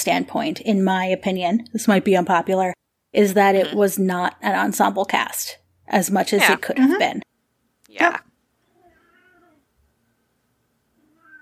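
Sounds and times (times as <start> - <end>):
speech: 0.0 - 7.3, 7.9 - 8.3
cat meowing: 8.7 - 9.6, 11.0 - 11.4.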